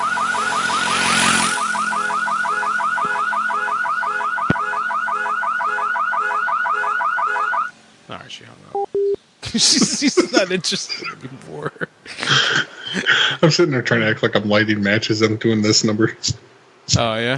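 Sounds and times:
loud car alarm whooping: 0:00.0 - 0:07.7
laughter: 0:09.4 - 0:13.9
speech: 0:09.5 - 0:17.3.

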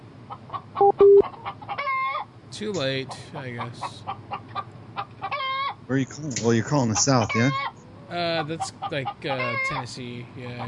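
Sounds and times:
drawn-out chicken squawks: 0:00.3 - 0:02.3, 0:04.1 - 0:05.8, 0:07.0 - 0:07.8, 0:08.8 - 0:09.8
chickens clucking: 0:00.3 - 0:05.8, 0:06.7 - 0:10.6
speech: 0:02.5 - 0:04.4, 0:05.9 - 0:10.6.

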